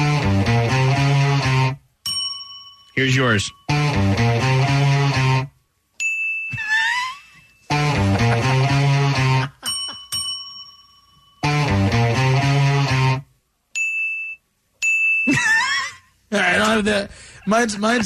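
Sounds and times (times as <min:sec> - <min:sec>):
loud digital recorded guitar riff: 0:00.0 - 0:01.8, 0:03.2 - 0:05.5, 0:07.7 - 0:09.5, 0:11.4 - 0:13.3
front desk bell dinging: 0:02.0 - 0:04.0, 0:06.0 - 0:06.6, 0:09.6 - 0:11.7, 0:13.8 - 0:15.4
speech: 0:03.0 - 0:04.2, 0:16.8 - 0:18.0.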